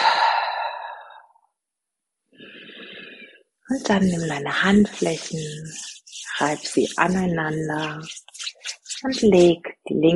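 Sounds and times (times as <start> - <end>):
forceful exhale through the mouth during a guided breathing exercise: 0.0 - 1.3
speech: 3.7 - 10.1.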